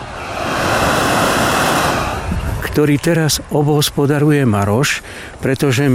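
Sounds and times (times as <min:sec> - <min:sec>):
gas camping stove burning while heating coffee on a hike: 0:00.1 - 0:02.4
speech: 0:02.8 - 0:05.9.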